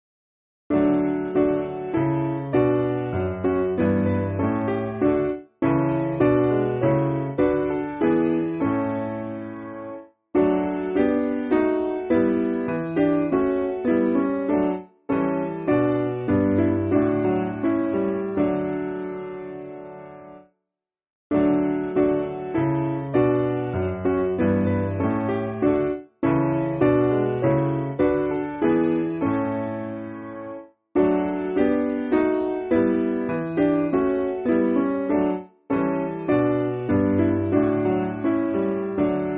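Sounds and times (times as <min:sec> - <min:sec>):
piano backing music for churches: 0:00.7 - 0:20.4, 0:21.3 - 0:39.3.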